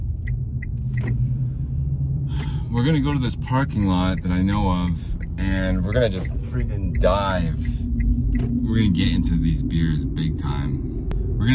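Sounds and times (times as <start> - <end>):
car engine rumble inside a moving vehicle: 0.0 - 11.5
speech: 2.7 - 11.5.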